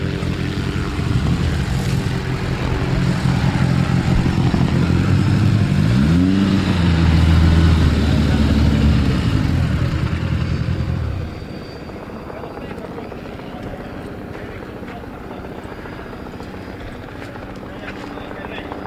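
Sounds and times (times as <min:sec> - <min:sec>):
rally zero car driving away on the course: 0:00.0 - 0:11.4.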